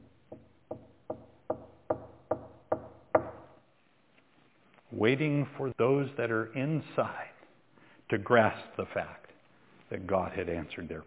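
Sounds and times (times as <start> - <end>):
knocking on a door: 0.3 - 3.5
speech: 5.0 - 7.3, 8.1 - 9.2, 9.9 - 11.0.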